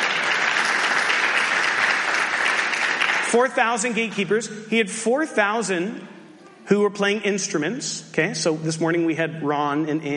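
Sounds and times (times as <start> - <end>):
large crowd applauding: 0.0 - 4.3
speech: 3.3 - 10.1.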